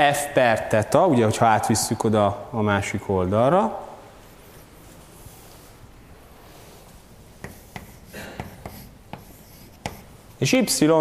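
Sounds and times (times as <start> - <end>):
speech: 0.0 - 3.9, 10.4 - 10.9
steady hiss: 0.0 - 10.9
writing on a board during a math lecture: 7.4 - 10.2.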